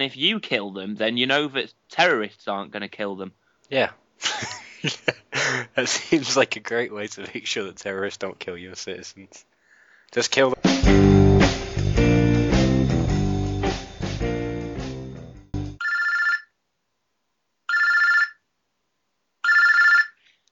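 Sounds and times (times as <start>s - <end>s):
speech: 0.0s - 9.5s, 10.1s - 11.1s
burst of music: 10.6s - 15.8s
electronic telephone rings: 15.8s - 16.6s, 17.7s - 18.4s, 19.4s - 20.2s.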